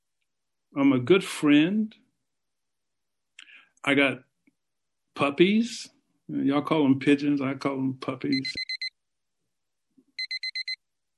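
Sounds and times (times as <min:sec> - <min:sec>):
speech: 0:00.7 - 0:02.0, 0:03.8 - 0:04.3, 0:05.2 - 0:08.6
electronic alarm beeping as a time warning: 0:08.3 - 0:08.9, 0:10.2 - 0:10.8.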